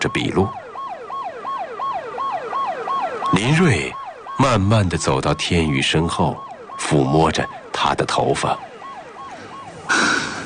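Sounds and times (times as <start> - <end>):
speech: 0.0 - 0.6, 3.3 - 8.7
ambulance siren yelping: 0.0 - 10.4.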